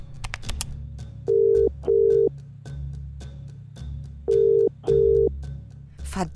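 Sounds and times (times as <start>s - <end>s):
telephone line ringing tone: 1.3s - 2.3s, 4.3s - 5.3s.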